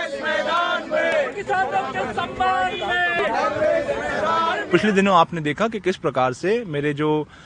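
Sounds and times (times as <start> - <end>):
large crowd of Congress party leaders chanting slogans in protest over falling garlic prices: 0.0 - 5.0
speech: 4.7 - 7.4.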